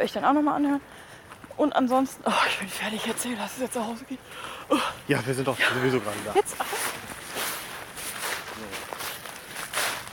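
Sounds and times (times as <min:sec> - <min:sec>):
speech: 0:00.0 - 0:07.0
squelchy footsteps in Crocs through wet leaves: 0:06.0 - 0:10.1.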